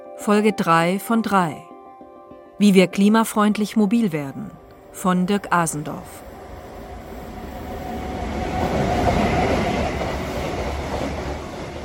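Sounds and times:
speech: 0.2 - 1.7, 2.6 - 6.2
S-Bahn commuter train rumbling through a station: 5.2 - 11.8.

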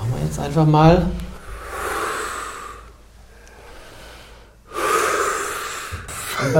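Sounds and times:
speech: 0.3 - 1.3
group of people breathing deeply together: 1.3 - 6.5.

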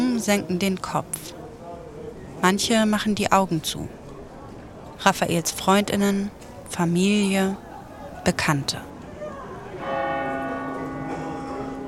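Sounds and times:
low murmur of outdoor ambience: 0.0 - 11.8
speech: 0.2 - 1.4, 2.4 - 4.0, 5.0 - 8.9
single church bell strike: 9.8 - 11.8.

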